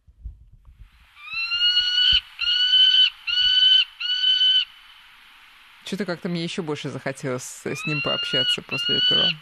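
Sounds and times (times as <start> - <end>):
peregrine falcon harsh grating call: 1.2 - 4.8, 7.6 - 9.4
speech: 5.9 - 9.4.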